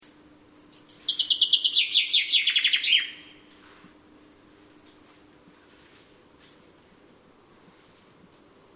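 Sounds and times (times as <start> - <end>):
common chaffinch Fringilla coelebs song: 0.4 - 3.6.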